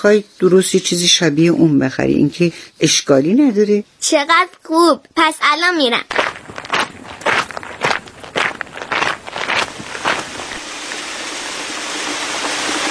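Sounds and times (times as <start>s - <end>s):
speech: 0.0s - 6.5s
hurried footsteps crunching: 5.9s - 10.6s
rain falling: 8.0s - 12.8s.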